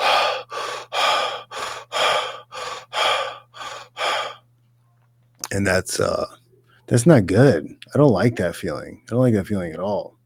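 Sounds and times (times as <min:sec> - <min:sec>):
voice imitating heavy breathing after lifting weights: 0:00.0 - 0:04.4
speech: 0:05.5 - 0:10.2.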